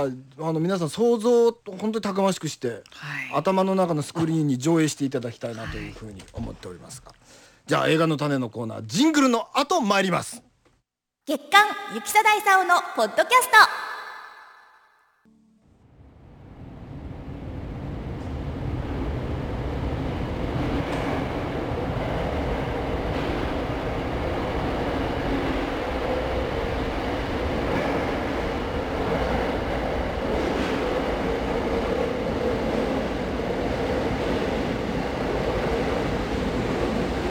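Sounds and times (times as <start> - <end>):
speech: 0.0 - 10.5, 11.2 - 13.9
low mechanical drone of subway train: 15.7 - 34.1
Ginza Line subway train leaving Omotesando station platform: 15.7 - 37.2
rattling subway train wheels: 18.4 - 37.2.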